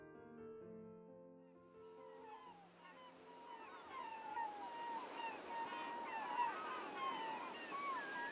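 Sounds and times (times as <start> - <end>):
steady wash of sea and surf: 1.8 - 8.3
many seagulls calling over the morning sea by a seaside town: 1.9 - 8.3.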